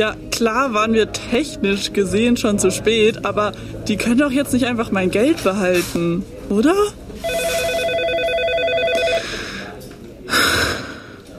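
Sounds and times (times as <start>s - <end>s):
speech: 0.0s - 7.5s
electronic office phone trilling: 7.2s - 9.3s
breathy noise burst: 9.1s - 11.3s.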